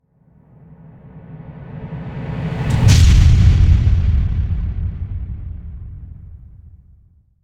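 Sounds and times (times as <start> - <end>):
whoosh: 0.4 - 7.1
big impact explosion: 2.6 - 7.1.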